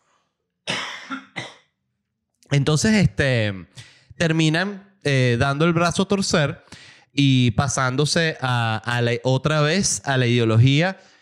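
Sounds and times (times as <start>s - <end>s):
harsh cough: 0.7s - 1.6s
speech: 2.5s - 11.1s.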